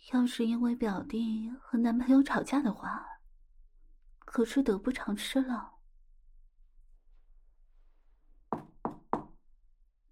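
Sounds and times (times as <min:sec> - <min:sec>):
speech: 0:00.1 - 0:03.1, 0:04.3 - 0:05.7
firm knocks on a door: 0:08.5 - 0:09.4.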